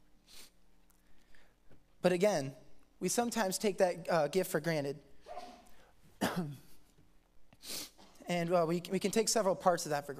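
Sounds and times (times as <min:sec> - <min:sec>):
speech: 0:02.0 - 0:05.1, 0:08.3 - 0:10.1
throat clearing: 0:05.3 - 0:07.0.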